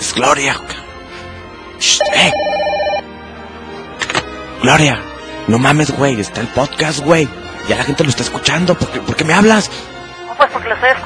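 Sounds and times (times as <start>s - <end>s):
speech: 0.2s - 0.7s, 1.8s - 2.7s, 4.6s - 11.0s
telephone ringtone: 2.0s - 3.1s.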